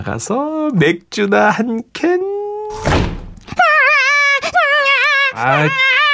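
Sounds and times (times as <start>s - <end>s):
speech: 0.0s - 3.1s, 5.4s - 6.0s
door thudding shut: 2.7s - 3.5s
baby wailing: 3.5s - 6.1s.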